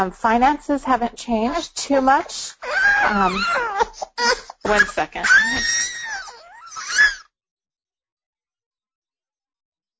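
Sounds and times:
speech: 0:00.0 - 0:06.0
infant crying: 0:01.5 - 0:07.2.

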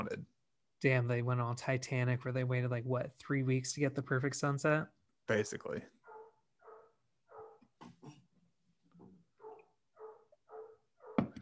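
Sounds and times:
speech: 0:00.0 - 0:06.0
dog barking: 0:06.0 - 0:07.7, 0:09.4 - 0:11.4.

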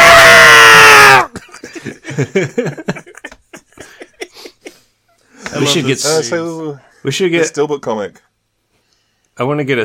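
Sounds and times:
person imitating a cartoon cat pain scream: 0:00.0 - 0:01.3
people laughing: 0:01.3 - 0:04.9
speech: 0:02.2 - 0:03.0, 0:05.6 - 0:08.3, 0:09.4 - 0:09.8.

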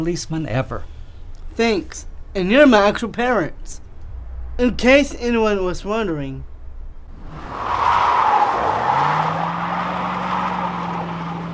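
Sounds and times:
speech: 0:00.0 - 0:00.9, 0:01.6 - 0:03.8, 0:04.6 - 0:06.5
Prius hybrid car tires squealing in a skid: 0:07.2 - 0:11.5.

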